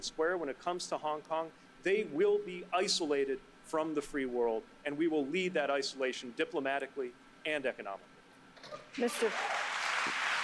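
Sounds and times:
speech: 0.0 - 9.6
audience applauding: 9.0 - 10.4
whoops and cheers: 9.1 - 10.4.

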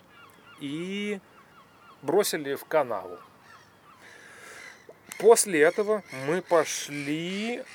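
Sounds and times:
seagulls giving harsh squawking cries: 0.0 - 7.7
speech: 0.6 - 1.4, 2.0 - 3.3, 5.2 - 7.7.

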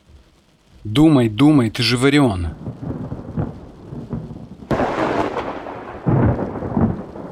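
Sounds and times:
steady rain: 0.0 - 7.3
speech: 0.8 - 2.9
rolling thunder during a rainstorm: 2.5 - 7.3.

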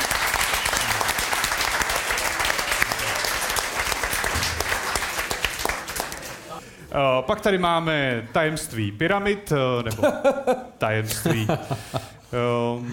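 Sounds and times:
applause from a sizable audience: 0.0 - 6.6
speech: 7.0 - 12.9
laughter: 9.9 - 12.2.

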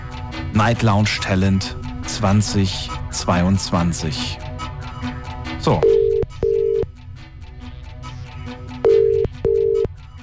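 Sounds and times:
speech: 0.6 - 4.4, 5.0 - 6.0
telephone ringing with short steady electronic tones: 5.8 - 6.9, 8.8 - 9.9.

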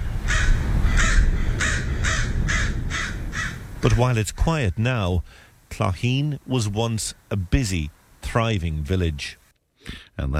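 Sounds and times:
crows cawing: 0.2 - 3.7
speech: 3.9 - 10.3.

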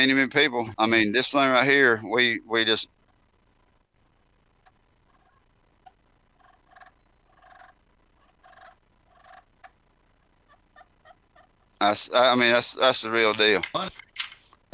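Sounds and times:
speech: 0.0 - 3.0, 11.8 - 14.0
turkey clucks and purrs played on a friction pot call: 4.6 - 9.8, 10.4 - 11.6.

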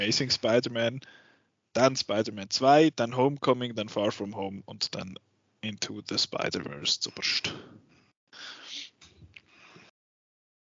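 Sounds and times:
speech: 0.0 - 7.7
person gasping in shock: 1.0 - 1.5, 7.5 - 9.9.

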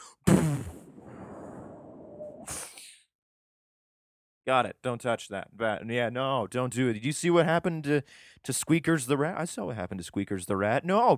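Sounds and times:
voice imitating an explosion blast: 0.0 - 2.8
speech: 4.5 - 11.1.

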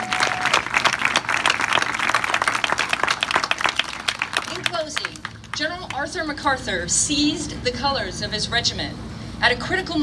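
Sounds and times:
large audience applause at a centennial celebration in San Pedro: 0.0 - 5.6
speech: 5.6 - 10.0.

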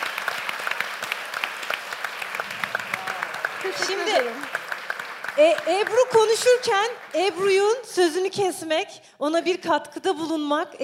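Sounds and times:
audience applause: 0.0 - 7.8
speech: 3.6 - 4.6, 5.4 - 10.8.

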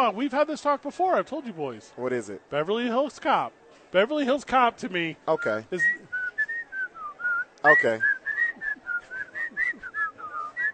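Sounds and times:
speech: 0.0 - 6.0, 7.6 - 8.1
person whistling a quick bouncy melody: 5.4 - 10.7.

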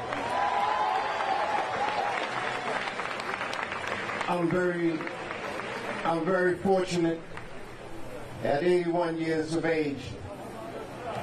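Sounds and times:
room full of people clapping: 0.0 - 6.0
speech: 4.3 - 5.2, 6.0 - 7.3, 8.4 - 10.3
murmur of voices: 4.4 - 11.2.

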